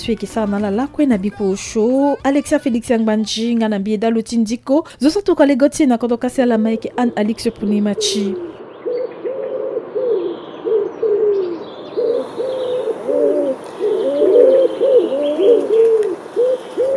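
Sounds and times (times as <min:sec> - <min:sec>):
speech: 0:00.0 - 0:08.5
pigeon cooing: 0:08.0 - 0:16.9.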